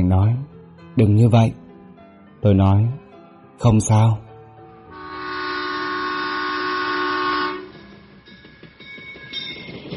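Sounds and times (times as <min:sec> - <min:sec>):
speech: 0:00.0 - 0:01.6, 0:02.4 - 0:03.0, 0:03.6 - 0:04.2
train horn: 0:04.9 - 0:07.8
train pulling away from a station, rumbling and clattering: 0:04.9 - 0:09.9.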